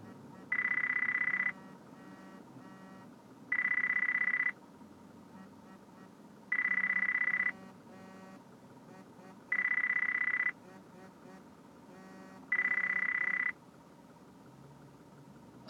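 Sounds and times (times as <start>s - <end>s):
telephone ringing with a buzzy electronic trill: 0.0s - 4.6s, 6.5s - 8.4s, 9.4s - 10.8s, 12.0s - 13.6s.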